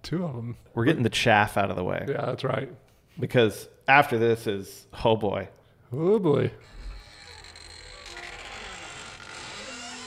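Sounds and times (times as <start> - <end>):
speech: 0.1 - 6.8
door creaking open sound effect: 6.6 - 10.0.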